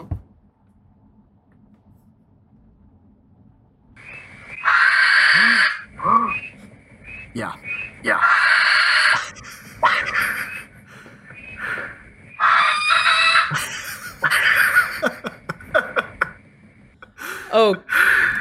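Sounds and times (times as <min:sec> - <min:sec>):
barn owl giving harsh hissing screeches: 0:04.0 - 0:14.6
human laughter: 0:13.5 - 0:16.4.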